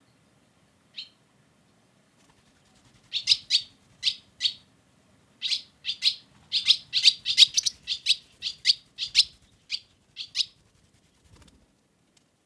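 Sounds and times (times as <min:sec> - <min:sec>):
barn swallow Hirundo rustica calling: 0:05.4 - 0:10.5.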